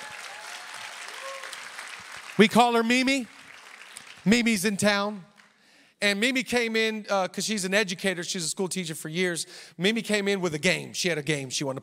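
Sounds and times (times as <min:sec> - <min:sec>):
audience applauding: 0:00.0 - 0:05.6
speech: 0:02.4 - 0:03.4, 0:04.2 - 0:05.3, 0:06.0 - 0:11.8.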